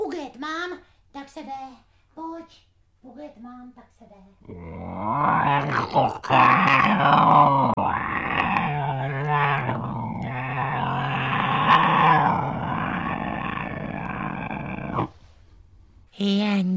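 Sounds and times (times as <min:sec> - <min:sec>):
speech: 0:00.4 - 0:08.4, 0:16.2 - 0:16.7
bear growling: 0:04.4 - 0:15.2.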